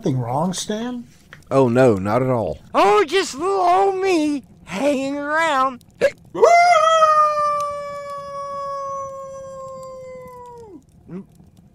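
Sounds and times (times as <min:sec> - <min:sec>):
speech: 0:00.0 - 0:07.4, 0:11.1 - 0:11.3
dog howling: 0:06.4 - 0:10.8.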